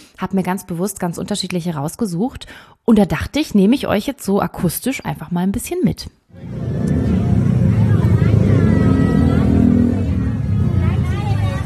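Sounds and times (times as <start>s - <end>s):
speech: 0.2s - 6.6s
vehicle traffic with engines and motorbikes at a night market: 6.3s - 11.6s
crowd chatter at a night market in Bangkok's Chinatown: 6.4s - 11.6s.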